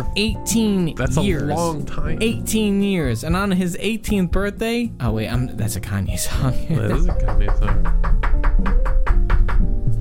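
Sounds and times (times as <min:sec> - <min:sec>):
speech: 0:00.0 - 0:08.8
sharp knocking on a door: 0:06.9 - 0:10.0.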